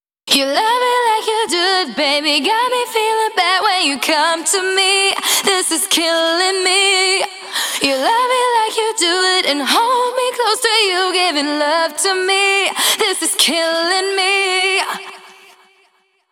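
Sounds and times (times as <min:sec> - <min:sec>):
female vocals chorus with reverb: 0:00.3 - 0:16.0.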